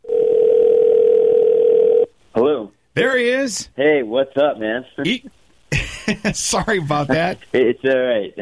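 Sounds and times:
electronic ringing tone of an outgoing phone call: 0.0s - 2.1s
speech: 3.0s - 5.4s, 6.1s - 8.4s
laughter: 5.7s - 7.4s.

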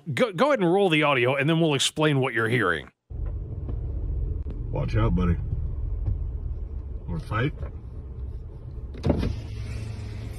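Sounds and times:
speech: 0.1s - 3.0s, 4.8s - 5.5s, 7.1s - 7.8s, 9.0s - 9.5s
car engine and road rumble: 3.0s - 10.3s
car power window motor whirring going down: 8.9s - 10.3s.

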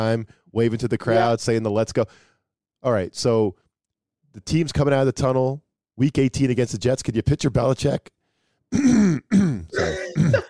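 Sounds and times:
speech: 0.0s - 3.6s, 4.3s - 10.4s
person clearing throat: 8.7s - 10.4s.

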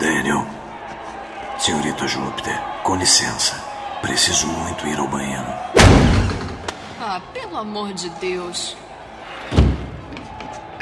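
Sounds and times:
speech: 1.6s - 6.4s, 7.0s - 8.9s
door slamming shut with a heavy booming thud: 5.8s - 6.7s, 9.5s - 10.0s.

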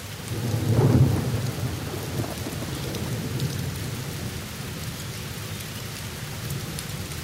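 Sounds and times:
steady hissing rainfall: 0.0s - 7.2s
low rumbling roll of thunder: 0.3s - 4.4s.

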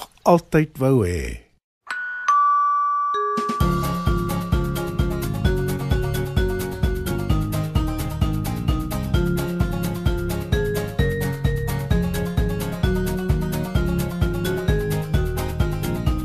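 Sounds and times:
speech: 0.2s - 1.4s
clear ringing bell chimes: 1.9s - 4.1s
bright upbeat music track with steady beat and bass: 3.2s - 16.2s.

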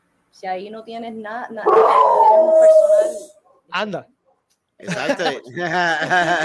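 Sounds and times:
speech: 0.4s - 4.2s, 4.8s - 6.4s
dog howling: 1.6s - 3.4s
laughter: 4.8s - 6.4s.

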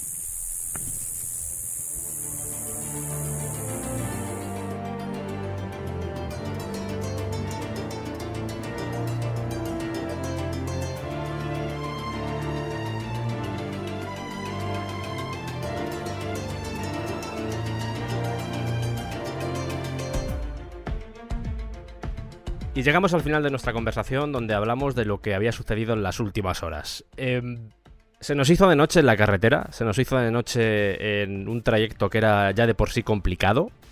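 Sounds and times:
cicada buzzing at night: 0.0s - 4.8s, 12.6s - 20.3s
dense music: 1.8s - 25.5s
speech: 22.8s - 33.8s.

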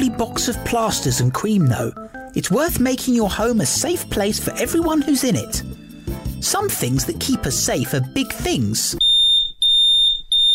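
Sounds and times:
speech: 0.0s - 5.8s, 6.4s - 9.0s
smoke alarm beeping: 9.0s - 10.5s.

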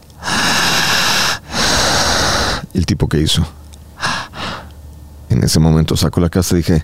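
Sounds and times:
person demonstrating a breathing pattern during a hypnosis session: 0.0s - 2.7s, 4.0s - 4.7s
speech: 2.8s - 3.6s, 5.3s - 6.8s.

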